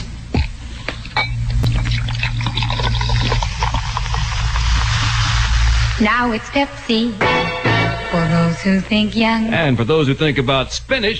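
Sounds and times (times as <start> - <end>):
low hum: 0.0 - 11.1
soda being poured into a glass and fizzing: 1.6 - 6.1
speech: 6.0 - 7.4, 8.2 - 11.1.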